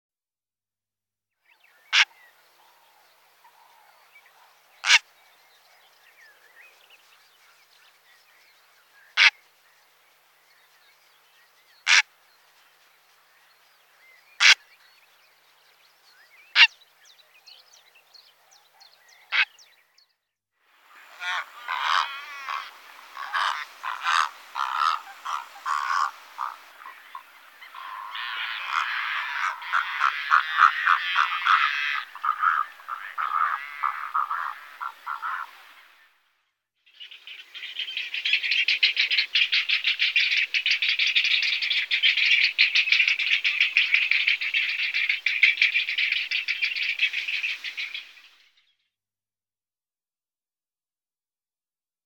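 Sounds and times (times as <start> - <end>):
purple heron calling: 1.8 - 2.4, 3.4 - 5.2, 9.1 - 9.4, 11.8 - 12.1, 14.4 - 14.8, 16.5 - 16.8, 19.2 - 19.7, 20.9 - 35.8, 37.2 - 48.1.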